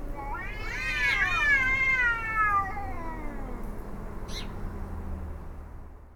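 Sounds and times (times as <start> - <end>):
cat howling: 0.1 - 3.8.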